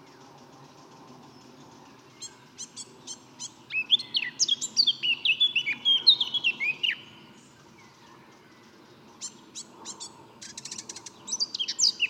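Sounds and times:
Eurasian blackcap loud clear warbling phrase of rich whistles: 2.0s - 8.0s, 9.2s - 12.0s.

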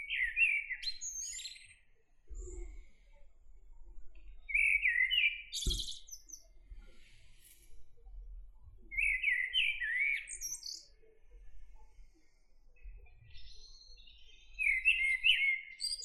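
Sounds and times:
common blackbird singing fluty warbles with high-pitched twittering: 0.0s - 1.8s, 4.4s - 6.5s, 8.9s - 11.0s, 13.4s - 16.0s.

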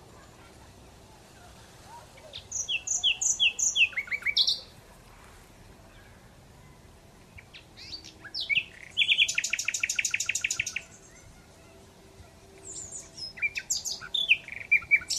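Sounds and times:
Common Nightingale Luscinia megarhynchos singing: 2.2s - 4.8s, 5.9s - 15.1s.

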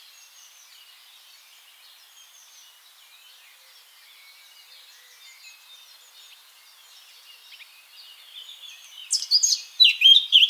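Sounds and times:
Eurasian blackcap warbled song, Sylvia atricapilla: 9.1s - 10.4s.

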